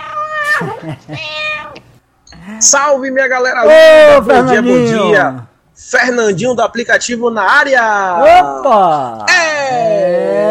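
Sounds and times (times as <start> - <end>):
cat meowing: 0.0 - 1.8
speech: 0.6 - 1.5, 2.4 - 10.2.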